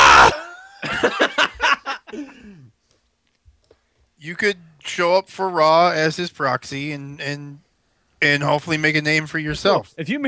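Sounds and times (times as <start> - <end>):
person imitating a man's scream: 0.0 - 0.8
laughter: 0.0 - 2.5
speech: 4.2 - 7.6, 8.2 - 10.2.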